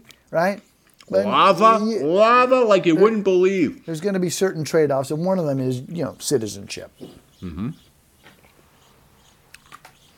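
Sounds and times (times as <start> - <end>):
wet chewing of juicy fibrous pineapple: 0.1 - 1.2
speech: 0.3 - 7.9.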